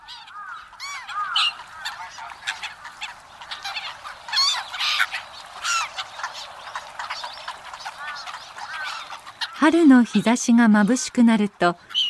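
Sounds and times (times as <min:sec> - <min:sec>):
flock of black-headed gulls calling at Toneri Park in Tokyo: 0:00.0 - 0:12.0
speech: 0:09.6 - 0:12.0.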